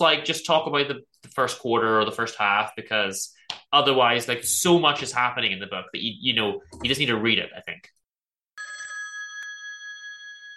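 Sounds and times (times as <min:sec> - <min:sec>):
speech: 0:00.0 - 0:08.0
telephone ringing with an incoming call: 0:08.6 - 0:10.5.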